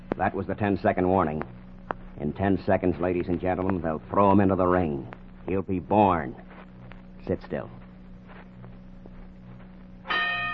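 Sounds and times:
low continuous hum: 0.0 - 10.5
speech: 0.2 - 1.6, 2.2 - 6.5, 7.2 - 7.8
boxing ring bell struck to signal the start of a fight: 10.1 - 10.5.

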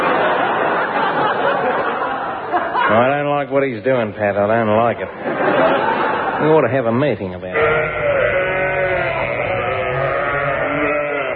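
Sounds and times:
laughter: 0.0 - 3.3, 5.0 - 6.9
speech: 2.9 - 7.8
recording of sheep bleating played back: 7.5 - 11.3.

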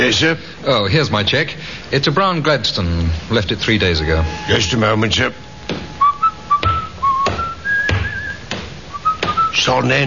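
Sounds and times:
speech: 0.0 - 5.8, 9.6 - 10.0
sharp knocks or taps: 5.6 - 6.0, 6.6 - 9.4
man whistling a simple tune: 6.0 - 9.7.

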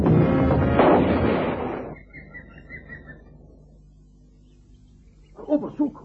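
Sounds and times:
big gun firing a heavy shot: 0.0 - 2.0
faint chirping: 1.7 - 6.0.

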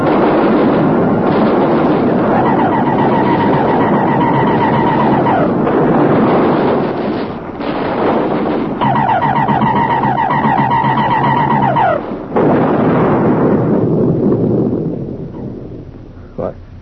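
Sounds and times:
heavy artillery batteries firing in a battle: 0.0 - 16.1
warbling electronic whine: 1.2 - 7.2, 8.8 - 12.4.

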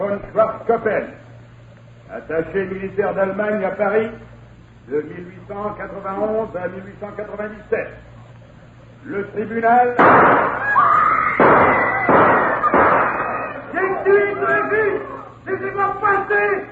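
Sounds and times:
speech: 0.0 - 1.2, 2.1 - 8.1, 9.0 - 10.8, 14.0 - 16.7
gunshots in a courtroom: 10.0 - 10.7, 11.4 - 13.6
raised agitated voices in a courtroom: 10.5 - 16.7.

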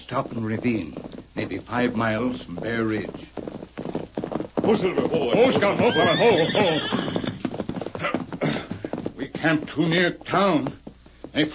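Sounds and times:
speech: 0.1 - 3.6, 4.7 - 7.1, 9.4 - 10.8
horse whinnying: 4.8 - 8.8.

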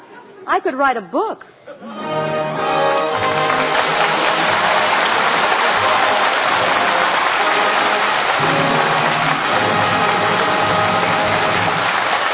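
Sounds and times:
speech: 0.4 - 2.8
water gushing from broken water pipes: 3.2 - 12.2.

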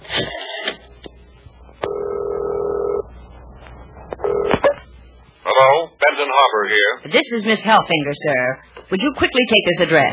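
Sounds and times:
steady telephone tone: 1.8 - 3.0, 4.2 - 4.8
speech: 6.4 - 10.1.

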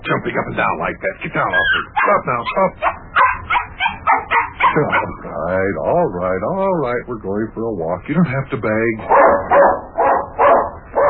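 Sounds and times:
speech: 0.1 - 3.0, 4.7 - 9.8
dog barking: 1.5 - 5.3, 9.0 - 11.0.

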